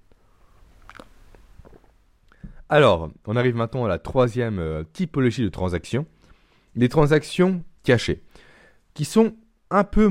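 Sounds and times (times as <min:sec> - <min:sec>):
small mouth noises: 0:00.1 - 0:02.5
person sipping coffee with a brief slurp: 0:00.4 - 0:02.4
soft swallowing: 0:00.8 - 0:02.6
speech: 0:02.7 - 0:06.2, 0:06.8 - 0:08.4, 0:09.0 - 0:10.0.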